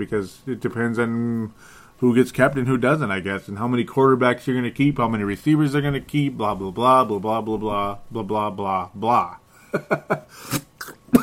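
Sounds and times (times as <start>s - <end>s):
speech: 0.0s - 11.2s
short sharp throaty coughs: 10.5s - 11.2s.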